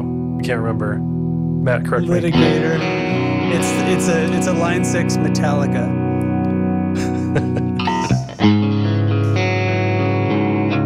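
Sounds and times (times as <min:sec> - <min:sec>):
speech: 0:00.0 - 0:06.0, 0:07.3 - 0:07.6
electric guitar through amp modeler with big reverb and delay: 0:00.0 - 0:10.8
laughter: 0:07.0 - 0:08.6.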